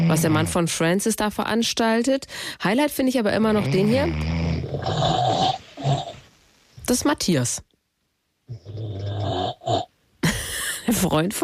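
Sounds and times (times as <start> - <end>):
speech: 0.1 - 6.0, 6.9 - 7.7, 10.9 - 11.4
man snoring in his sleep: 3.7 - 6.2, 8.5 - 9.9.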